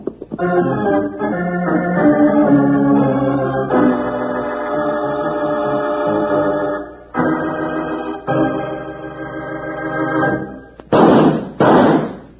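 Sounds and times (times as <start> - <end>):
orchestral music: 0.4 - 10.7
loud sharp gunshots: 10.9 - 12.3.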